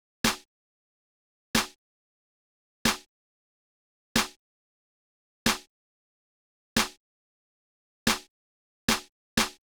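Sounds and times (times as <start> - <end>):
hip hop snare drum in C minor: 0.2 - 0.5, 1.6 - 1.8, 2.9 - 3.1, 4.2 - 4.4, 5.5 - 5.7, 6.8 - 7.0, 8.1 - 8.3, 8.9 - 9.6.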